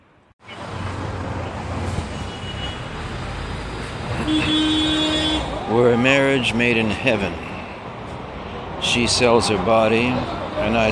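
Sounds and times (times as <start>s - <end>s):
large vehicle engine and road rumble: 0.0s - 10.9s
speech: 4.3s - 4.8s, 5.7s - 7.5s, 8.9s - 10.9s.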